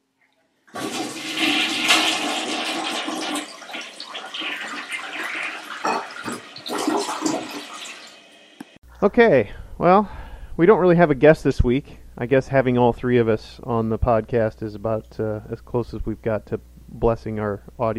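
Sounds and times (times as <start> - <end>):
toilet flushing: 0.7 - 8.8
speech: 9.0 - 17.9.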